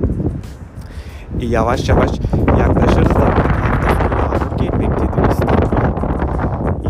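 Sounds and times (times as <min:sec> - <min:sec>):
strong wind roaring against the microphone: 0:00.0 - 0:06.8
speech: 0:01.4 - 0:03.5.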